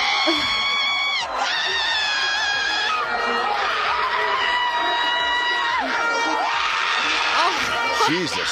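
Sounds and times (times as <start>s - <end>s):
noisy crowd-like din: 0.0s - 8.5s
speech: 0.2s - 0.6s, 8.1s - 8.5s
female World Cup football fan yelling over disallowed goal: 7.3s - 8.1s.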